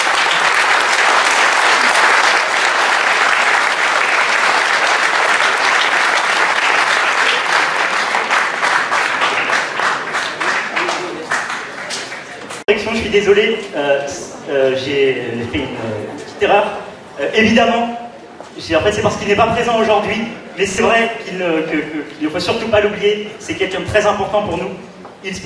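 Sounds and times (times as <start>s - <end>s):
large audience applauding loudly: 0.0s - 12.7s
speech: 13.1s - 17.9s, 18.6s - 25.4s.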